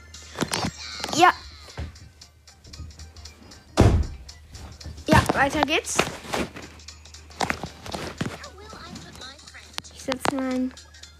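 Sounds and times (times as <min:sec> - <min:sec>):
shuffling: 0:00.3 - 0:10.8
speech: 0:01.2 - 0:01.4, 0:05.4 - 0:06.5, 0:10.3 - 0:10.8
door shutting with a solid thud: 0:03.8 - 0:04.2.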